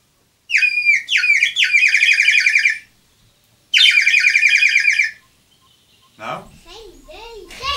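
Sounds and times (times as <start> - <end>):
bird singing: 0.5 - 7.6.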